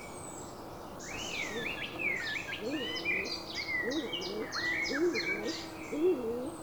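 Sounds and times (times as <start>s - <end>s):
songbird whistled phrases and chirps: 1.1s - 5.7s
stock dove coos in low soft double notes: 1.2s - 6.6s.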